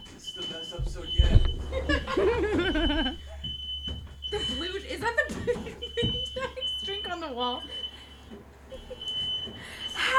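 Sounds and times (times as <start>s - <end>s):
faint shrill smoke alarm tone: 0.0s - 10.1s
laughter: 1.6s - 3.5s, 4.3s - 6.9s, 8.6s - 9.2s.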